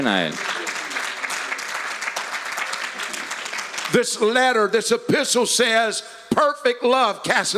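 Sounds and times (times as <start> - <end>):
speech: 0.0 - 0.6, 3.9 - 7.5
audience clapping hands: 0.0 - 4.8.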